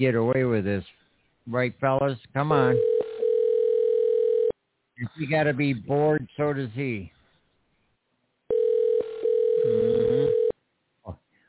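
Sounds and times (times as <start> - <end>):
speech: 0.0 - 2.9, 5.0 - 7.2
telephone ringing unanswered: 2.7 - 4.5, 8.5 - 10.5.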